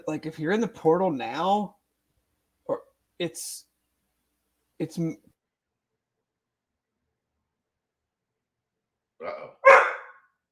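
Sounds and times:
speech: 0:00.0 - 0:01.8, 0:02.7 - 0:03.7, 0:04.8 - 0:05.3
dog barking: 0:09.6 - 0:10.3.

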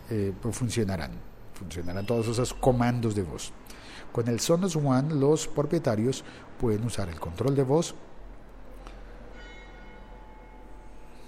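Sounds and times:
speech: 0:00.1 - 0:08.1
church bell ringing: 0:08.9 - 0:11.2.

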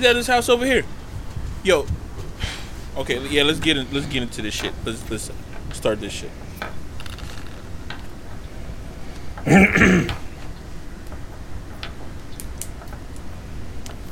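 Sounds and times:
speech: 0:00.0 - 0:01.0, 0:01.6 - 0:06.8, 0:09.5 - 0:10.2
throat-clearing cough: 0:09.4 - 0:10.2.

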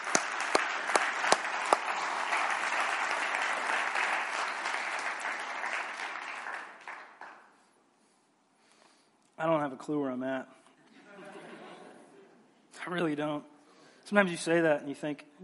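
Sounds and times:
audience applause: 0:00.0 - 0:07.5
speech: 0:09.4 - 0:10.6, 0:12.9 - 0:13.5, 0:14.1 - 0:15.4
laughter: 0:10.9 - 0:12.4.

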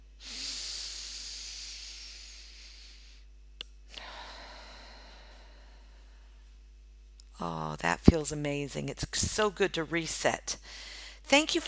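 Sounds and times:
deep breath in through the nose and out through the mouth: 0:00.2 - 0:03.3, 0:03.9 - 0:06.6, 0:10.6 - 0:11.2
speech: 0:07.4 - 0:11.6.

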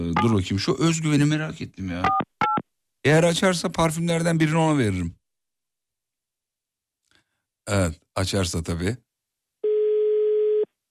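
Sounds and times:
speech: 0:00.1 - 0:02.2, 0:03.0 - 0:05.2, 0:07.7 - 0:09.1
outgoing phone call ringing tone: 0:09.6 - 0:10.7.

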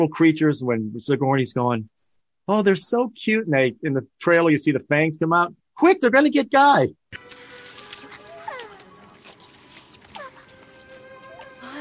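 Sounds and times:
speech: 0:00.0 - 0:07.3
dog whining yelps: 0:08.0 - 0:11.6.

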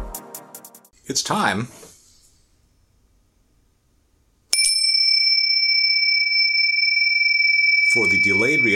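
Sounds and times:
speech: 0:01.2 - 0:01.8, 0:08.0 - 0:08.7
bell struck and ringing with a bright steady tone: 0:04.5 - 0:08.7.

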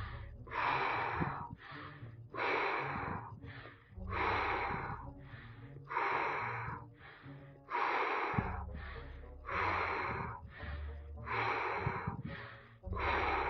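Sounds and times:
deep rhythmic breathing during a guided shamanic breathing meditation: 0:00.0 - 0:13.4.

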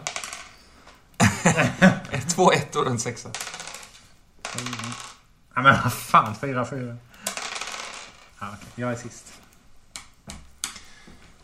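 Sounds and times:
dice rolling on a hard tabletop: 0:00.0 - 0:01.0, 0:02.0 - 0:05.3, 0:07.2 - 0:09.4
laughter: 0:01.2 - 0:02.5
speech: 0:01.4 - 0:03.5, 0:04.6 - 0:07.3, 0:08.4 - 0:09.3.

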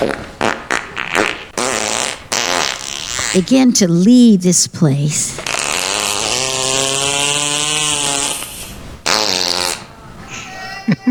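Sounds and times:
fart sounds: 0:00.0 - 0:03.7, 0:05.4 - 0:09.9
speech: 0:03.3 - 0:05.5.

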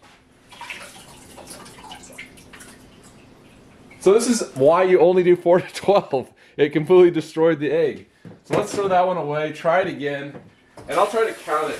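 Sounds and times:
water emptied out of an egg peeler container: 0:00.4 - 0:04.1, 0:10.9 - 0:11.7
water dripping: 0:00.5 - 0:04.1
speech: 0:04.0 - 0:11.7.

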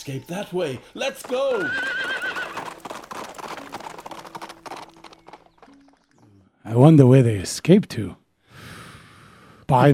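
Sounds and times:
speech: 0:00.0 - 0:02.1, 0:06.6 - 0:08.2, 0:09.7 - 0:09.9
clatter of hooves: 0:00.3 - 0:06.2
old horse whinnying: 0:01.4 - 0:02.9.

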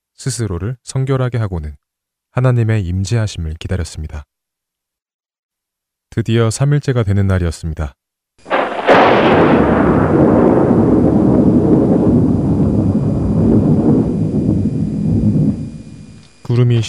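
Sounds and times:
speech: 0:00.2 - 0:04.3, 0:06.1 - 0:08.0, 0:16.6 - 0:16.8
thunder crack and heavy rumble: 0:08.5 - 0:16.2.

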